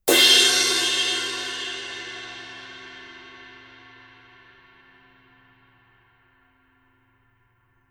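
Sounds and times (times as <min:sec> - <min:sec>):
Formula 602 19 crash cymbal edge hit: 0:00.1 - 0:06.2.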